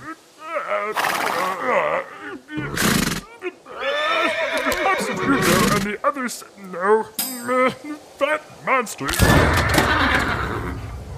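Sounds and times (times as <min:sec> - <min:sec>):
dense steady noise: 0:00.0 - 0:11.1
speech: 0:00.8 - 0:02.1, 0:06.3 - 0:07.2, 0:08.8 - 0:10.7
horse whinnying: 0:02.6 - 0:05.9, 0:09.5 - 0:10.9.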